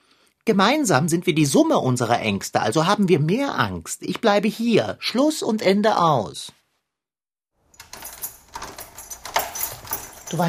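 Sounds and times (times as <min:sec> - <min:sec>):
speech: 0:00.5 - 0:06.6
keys jangling: 0:07.7 - 0:10.4
apartment door being closed: 0:07.8 - 0:10.4.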